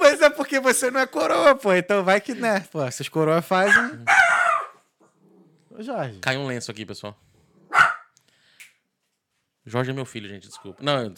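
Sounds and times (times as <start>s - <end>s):
speech: 0.5s - 4.2s, 5.8s - 7.3s, 9.6s - 11.1s
dog barking: 3.6s - 4.9s, 7.7s - 8.2s, 10.6s - 11.1s.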